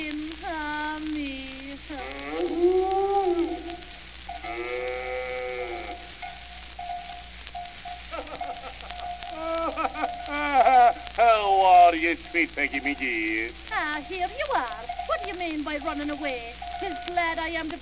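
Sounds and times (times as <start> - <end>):
cow mooing: 2.0 - 6.1
laughter: 8.1 - 13.0
speech: 12.4 - 17.7.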